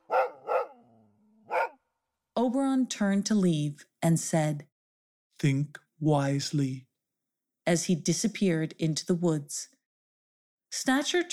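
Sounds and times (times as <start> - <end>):
husky sled dog barking: 0.0 - 1.8
speech: 2.4 - 4.7, 5.4 - 6.9, 7.7 - 9.7, 10.7 - 11.3.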